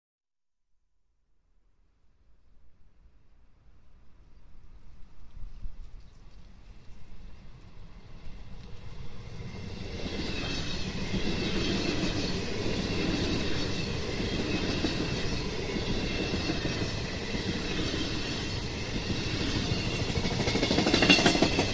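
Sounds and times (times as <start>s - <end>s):
3D train: 3.4s - 21.7s.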